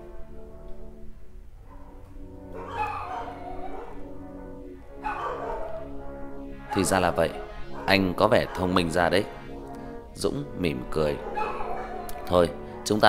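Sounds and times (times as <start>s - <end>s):
sustained tones: 0.0s - 13.0s
dog barking: 1.6s - 2.0s, 2.6s - 4.1s, 5.0s - 5.9s, 6.7s - 9.0s, 11.0s - 12.3s
speech: 6.8s - 9.4s, 10.2s - 11.5s, 12.3s - 13.0s.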